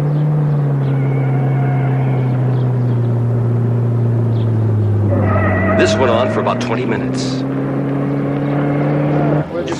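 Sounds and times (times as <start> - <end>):
car engine droning while driving fast: 0.0 - 9.7
speech: 6.0 - 7.5.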